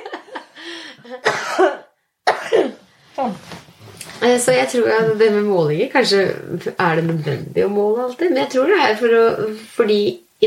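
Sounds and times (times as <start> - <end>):
person coughing: 1.1 - 2.9
person clearing throat: 1.2 - 2.8
speech: 4.3 - 10.4.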